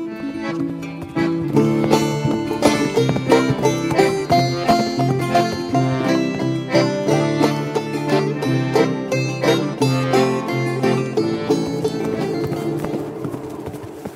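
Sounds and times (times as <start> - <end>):
loud galloping horse hoofbeats: 0.0 - 14.1
sustained tonal backing: 0.0 - 14.1.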